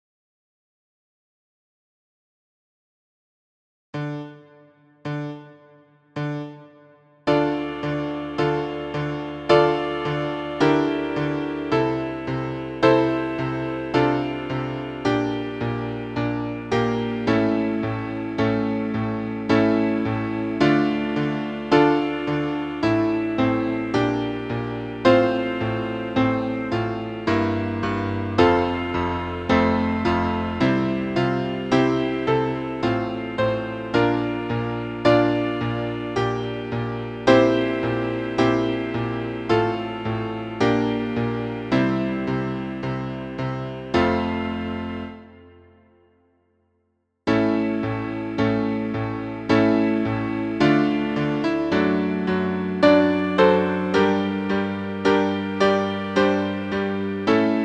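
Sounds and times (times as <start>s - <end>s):
grave piano: 4.0s - 46.0s, 47.3s - 57.6s.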